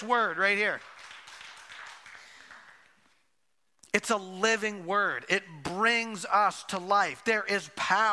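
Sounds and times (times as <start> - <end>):
speech: 0.0 - 0.9, 3.9 - 8.1
audience clapping: 0.0 - 3.2.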